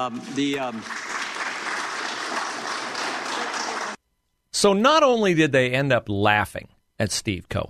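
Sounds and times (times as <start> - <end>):
speech: 0.0 - 1.2, 4.6 - 7.6
audience applauding in a hearing room: 0.0 - 4.0.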